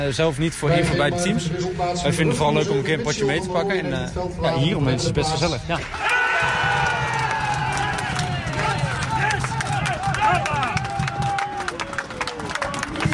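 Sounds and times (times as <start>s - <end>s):
speech: 0.0s - 6.2s
steady low rumble of crowd noise: 0.0s - 13.1s
football supporters cheering at a football sports park: 5.8s - 13.1s
dense crowd of overlapping shouts and excited voices: 5.9s - 13.1s.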